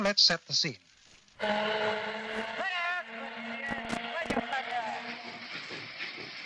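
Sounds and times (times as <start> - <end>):
speech: 0.0 - 3.5
riverboat whistle: 1.4 - 5.6
riverboat mechanical churn: 1.4 - 6.4.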